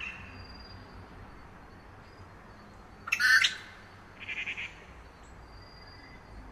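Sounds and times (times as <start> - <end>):
grey treepie buzzy squawk at Yushan: 3.1 - 4.8.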